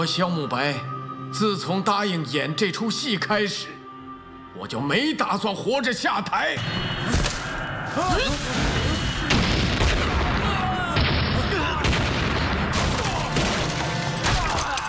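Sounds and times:
speech: 0.0 - 3.8, 4.5 - 7.2, 8.0 - 8.8
explosions booming: 8.2 - 14.2
people shouting: 10.0 - 13.4, 14.2 - 14.8.

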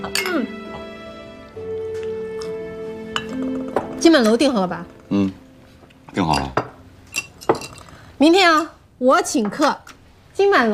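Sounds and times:
glasses clinking in a toast: 0.0 - 0.5, 3.1 - 8.7
speech: 0.0 - 0.6, 4.0 - 5.4, 6.2 - 6.6, 8.2 - 10.7.

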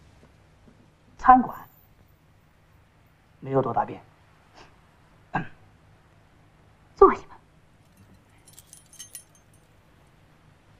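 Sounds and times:
low hum: 0.0 - 10.7
speech: 1.2 - 1.6, 3.4 - 4.1
keys jangling as they are handed over: 7.8 - 9.8.

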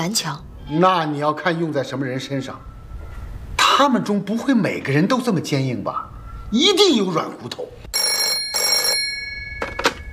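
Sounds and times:
speech: 0.0 - 2.7, 3.8 - 8.0
telephone bell ringing in a military court office: 7.9 - 10.1.

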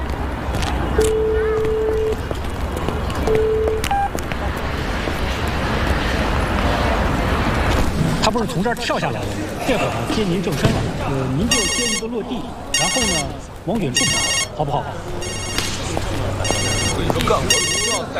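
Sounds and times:
people talking on a busy film set: 0.9 - 18.1
telephone ringing in electronic bursts: 11.5 - 12.1, 12.8 - 13.4, 14.0 - 14.6, 15.2 - 18.1.

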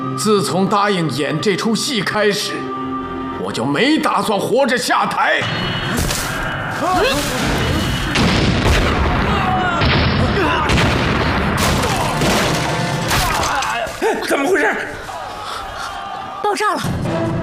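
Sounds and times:
speech: 0.2 - 2.8, 3.5 - 6.2, 6.8 - 7.7, 14.2 - 15.0, 16.5 - 17.2
explosions booming: 7.3 - 13.1
shouting voices: 9.2 - 10.8, 13.2 - 16.9.

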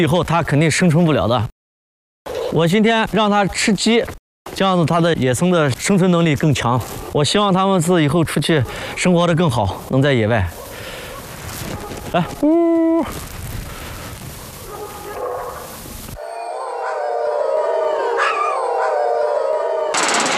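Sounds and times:
speech: 0.0 - 1.5, 2.5 - 10.7, 12.1 - 13.3
wolves howling in long wavering tones: 16.2 - 20.2.

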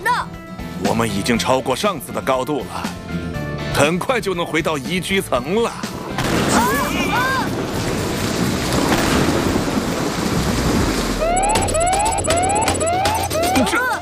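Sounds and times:
speech: 0.2 - 3.0, 3.8 - 5.9
hissing rain-like noise: 5.7 - 11.2
heavy roaring rumble of thunder: 5.8 - 14.0.

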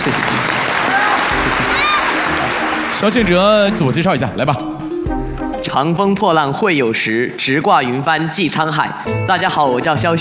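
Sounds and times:
studio audience applause: 0.0 - 4.3
speech: 3.0 - 4.8, 5.7 - 10.1.

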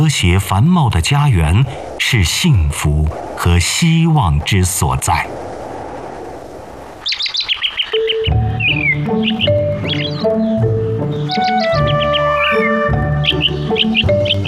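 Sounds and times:
speech: 0.1 - 5.5
male weaver birds calling while building nests in early summer: 7.0 - 14.4
instrumental music: 8.0 - 14.4.

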